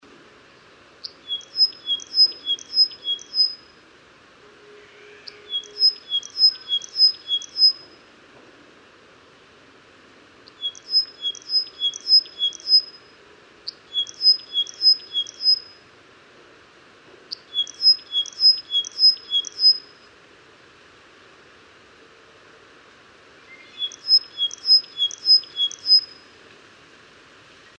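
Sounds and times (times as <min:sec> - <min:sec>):
forest wagtail calling: 0:01.0 - 0:03.7, 0:04.6 - 0:07.9, 0:10.5 - 0:13.0, 0:13.7 - 0:15.7, 0:17.3 - 0:20.0, 0:23.4 - 0:26.3.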